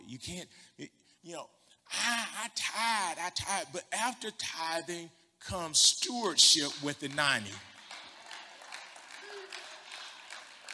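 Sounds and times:
speech: 0:00.2 - 0:07.7
audience clapping: 0:06.2 - 0:10.7.

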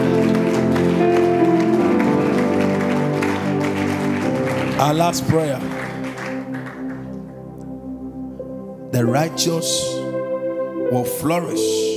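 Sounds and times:
audience clapping: 0:00.0 - 0:07.8
sustained musical tones: 0:00.0 - 0:11.9
speech: 0:04.8 - 0:05.8, 0:09.0 - 0:10.0, 0:10.9 - 0:11.9.

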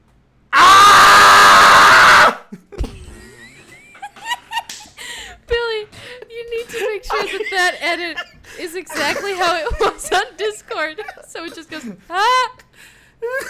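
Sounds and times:
human voice imitating a monster's high-pitched screech: 0:00.6 - 0:02.4
people laughing: 0:02.5 - 0:05.2, 0:06.6 - 0:12.0.

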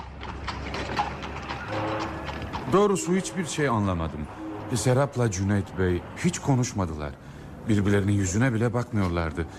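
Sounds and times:
hooves of a horse-drawn carriage clip-clopping: 0:00.0 - 0:03.0
horse-drawn carriage wheels rumbling: 0:00.0 - 0:03.0
speech: 0:02.7 - 0:09.5.

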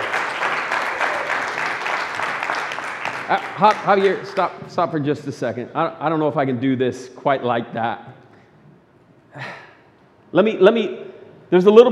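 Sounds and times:
crowd clapping at a church: 0:00.0 - 0:04.6
speech: 0:03.3 - 0:08.2, 0:10.3 - 0:11.9.

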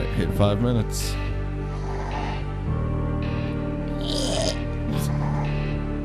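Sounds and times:
speech: 0:00.2 - 0:01.3
woman snoring while asleep: 0:01.7 - 0:02.7, 0:03.9 - 0:05.8.

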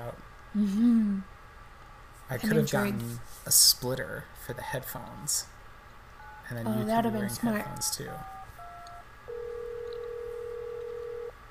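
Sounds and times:
low hum: 0:00.0 - 0:11.4
speech: 0:00.5 - 0:01.3, 0:02.3 - 0:05.5, 0:06.5 - 0:08.4
telephone ringing: 0:06.2 - 0:11.3.

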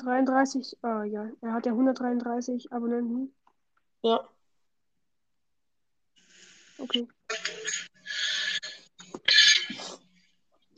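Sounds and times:
speech: 0:00.0 - 0:03.4, 0:04.0 - 0:04.4, 0:06.8 - 0:08.4
person coughing roughly: 0:09.2 - 0:10.0.

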